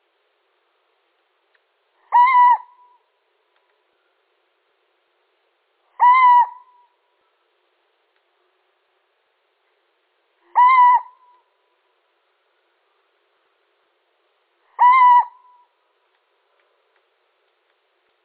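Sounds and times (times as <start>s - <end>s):
male little owl hooting: 2.0s - 3.0s, 6.0s - 7.0s, 10.4s - 11.5s, 14.7s - 15.7s.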